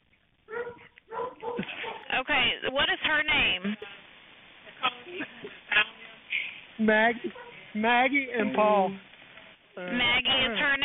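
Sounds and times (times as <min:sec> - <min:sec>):
dogs barking in the background of a 911 call: 0:00.5 - 0:02.1, 0:07.3 - 0:07.6
speech: 0:02.4 - 0:03.8, 0:06.8 - 0:09.1, 0:09.8 - 0:10.8.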